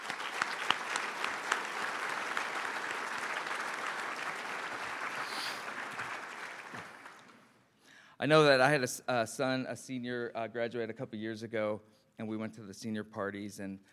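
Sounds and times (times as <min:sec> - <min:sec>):
room full of people applauding students: 0:00.0 - 0:07.5
speech: 0:08.2 - 0:13.9.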